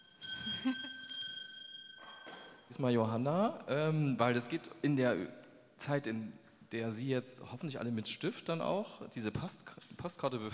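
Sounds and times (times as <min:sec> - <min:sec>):
handbell rung during a live event: 0:00.0 - 0:02.7
speech: 0:00.6 - 0:01.0, 0:02.8 - 0:10.5.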